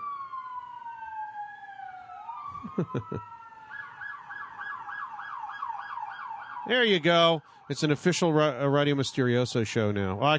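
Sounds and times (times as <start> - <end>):
moving emergency vehicle siren wailing: 0.0 - 8.6
laughter: 2.6 - 3.3
speech: 2.8 - 3.4, 6.7 - 10.3.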